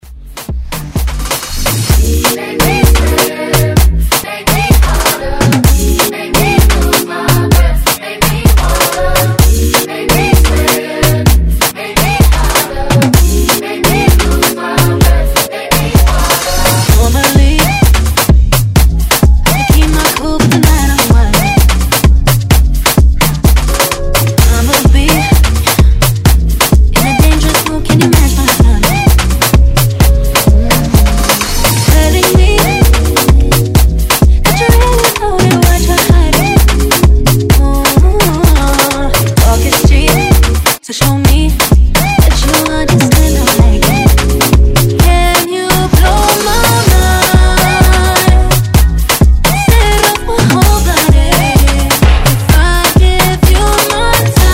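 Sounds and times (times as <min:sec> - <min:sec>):
afrobeat music: 0:00.0 - 0:54.5.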